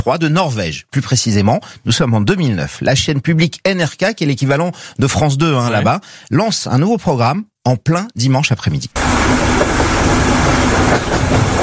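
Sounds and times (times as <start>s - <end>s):
speech: 0.0s - 11.2s
train running gear roar recorded from the locomotive: 9.0s - 11.6s
train wheels clattering on rails: 9.2s - 11.6s.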